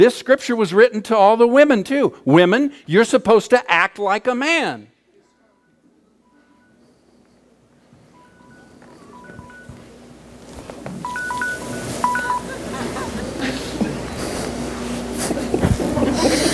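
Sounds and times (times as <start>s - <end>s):
speech: 0.0s - 4.9s
phone timer app electronic alert beeps: 8.2s - 9.8s, 11.0s - 12.6s
laughter: 12.2s - 16.5s.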